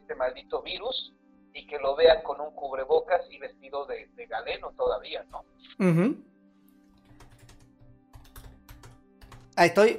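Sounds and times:
speech: 0.2 - 6.3, 9.6 - 9.9
typing on a computer keyboard to answer chat: 7.0 - 9.6.

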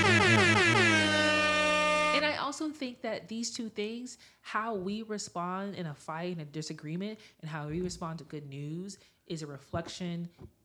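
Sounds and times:
air horn sound effect blaring: 0.0 - 2.4
speech: 2.6 - 10.6.

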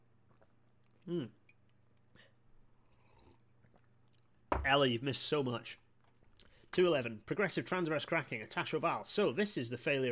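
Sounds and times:
sipping tea: 0.3 - 4.4
speech: 1.0 - 1.4, 4.6 - 5.8, 6.8 - 10.1.

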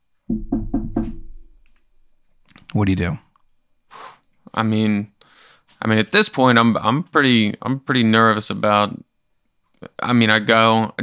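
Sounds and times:
firm knocks on a wooden door: 0.3 - 1.5
speech: 2.8 - 3.3, 4.6 - 5.1, 5.8 - 9.1, 9.8 - 11.0.

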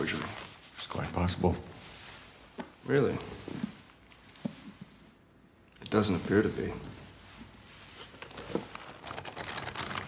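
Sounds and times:
speech: 0.9 - 1.7, 2.9 - 3.5, 5.9 - 6.9
dry old book paper being flexed and crinkled: 8.0 - 10.0.

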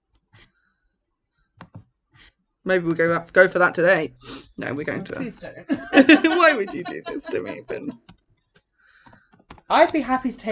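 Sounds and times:
speech: 2.6 - 8.2, 9.7 - 10.5
laughter: 5.6 - 8.0
soft keystrokes typing a Google search on a computer keyboard: 8.0 - 10.0.

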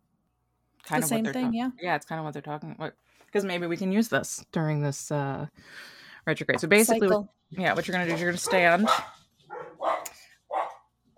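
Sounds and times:
speech: 0.9 - 9.2
dogs barking in sharp mid-pitched yaps: 8.4 - 11.1.

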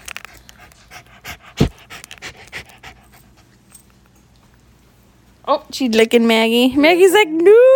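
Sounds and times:
puppy panting: 0.2 - 3.9
speech: 5.5 - 7.7.

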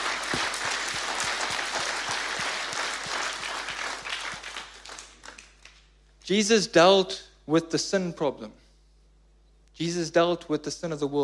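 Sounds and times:
audience clapping: 0.0 - 6.0
speech: 6.3 - 8.6, 9.8 - 11.2.

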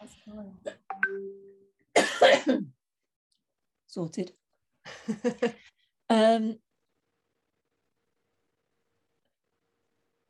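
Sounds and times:
harsh cough caused by a disability: 1.9 - 2.8
speech: 2.2 - 2.7, 3.9 - 4.4, 5.1 - 6.6.

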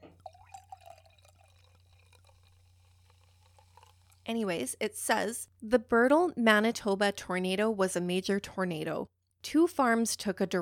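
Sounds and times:
sipping a mimosa from a glass: 0.0 - 4.3
faint steady hum: 0.0 - 5.7
speech: 4.3 - 10.6.

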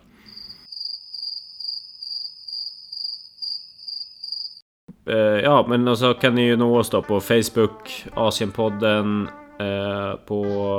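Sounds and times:
cricket chirping in shrill high trills: 0.2 - 4.6
speech: 5.1 - 10.7.

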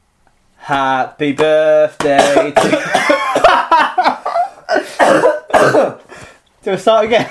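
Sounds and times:
speech: 0.7 - 4.2, 6.6 - 7.3
person coughing after water went down the wrong way: 2.1 - 3.7, 4.3 - 6.1
laughter: 2.8 - 5.0.

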